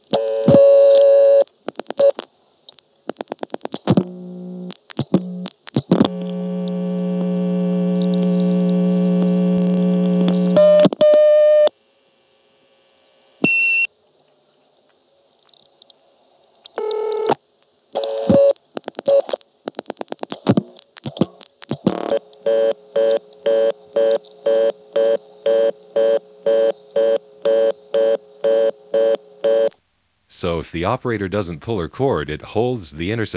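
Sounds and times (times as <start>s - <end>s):
telephone reorder tone from a vacant exchange level: 0.1s - 2.2s, 3.9s - 11.7s, 16.8s - 17.4s, 18.0s - 19.3s, 21.9s - 29.7s
long steady telephone line hum: 3.5s - 14.6s, 21.9s - 33.3s
speech: 30.7s - 33.3s.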